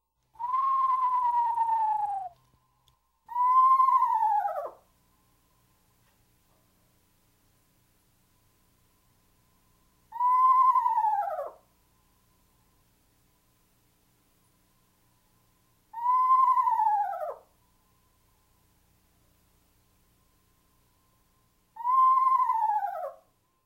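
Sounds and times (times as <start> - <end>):
eastern screech owl descending whinny call: 0.4 - 2.4, 3.3 - 4.8, 10.1 - 11.7, 15.9 - 17.5, 21.8 - 23.3.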